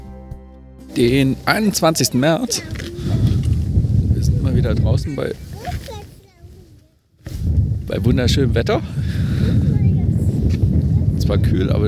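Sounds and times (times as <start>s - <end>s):
speech: 1.0s - 3.2s, 4.6s - 5.9s, 7.4s - 9.7s, 11.3s - 11.8s
steady outdoor wind on a cool sunny day buffeting the microphone: 1.0s - 11.8s.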